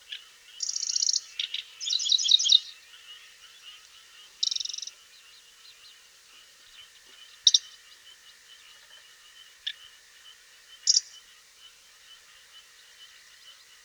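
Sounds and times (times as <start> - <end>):
river warbler singing: 0.0 - 6.0, 7.3 - 7.8.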